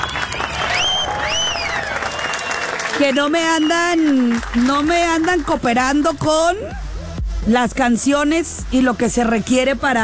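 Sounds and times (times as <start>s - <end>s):
whistle-like tones above applause: 0.0s - 2.8s, 3.4s - 4.0s
crowd applause and cheering: 0.0s - 6.1s
speech: 3.0s - 6.8s, 7.4s - 10.0s.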